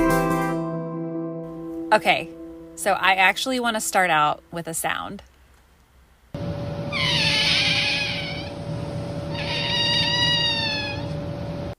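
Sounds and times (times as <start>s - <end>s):
steady tone: 0.0s - 5.2s
speech: 1.9s - 5.3s
North American river otter giving harmonic squealing whines: 6.8s - 11.4s.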